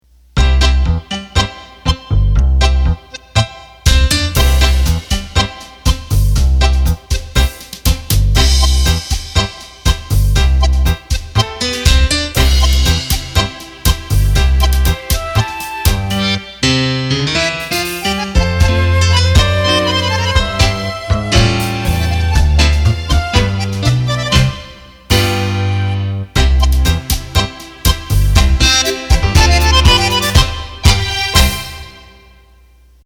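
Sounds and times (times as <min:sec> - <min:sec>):
tango on a Roland BK7m arranger keyboard: 0:00.4 - 0:32.3.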